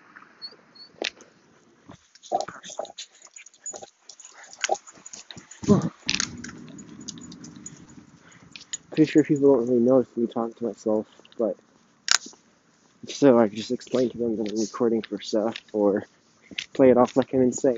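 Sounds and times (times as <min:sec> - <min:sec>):
clicks, scuffs and crunchy handling noises: 0:01.0 - 0:17.7
dog whining at a crosswalk: 0:02.3 - 0:09.0
speech: 0:09.0 - 0:11.7, 0:13.2 - 0:16.1, 0:16.8 - 0:17.7.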